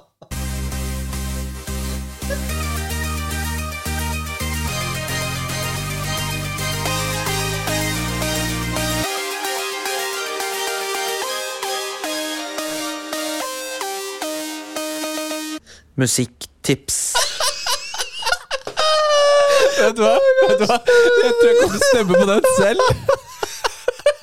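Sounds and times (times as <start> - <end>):
short instrumental podcast jingle with bass-heavy chords and synth melody: 0.4 - 15.6
speech: 16.0 - 17.2, 19.8 - 23.2
laughter: 17.2 - 24.2.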